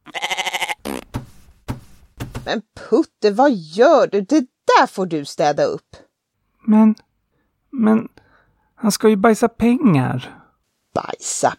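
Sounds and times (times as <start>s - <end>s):
old goat bleating: 0.0s - 1.0s
dull thuds: 0.9s - 2.6s
speech: 2.4s - 6.0s, 6.6s - 7.1s, 7.7s - 8.2s, 8.8s - 11.5s.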